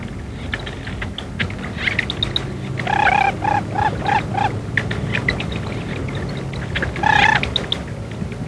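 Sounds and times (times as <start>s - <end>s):
outdoor noise: 0.0s - 8.4s
lesser whistling duck ducklings peeping chatter: 1.8s - 7.9s
lesser whistling duck mother whistling: 2.2s - 4.6s, 7.0s - 7.8s.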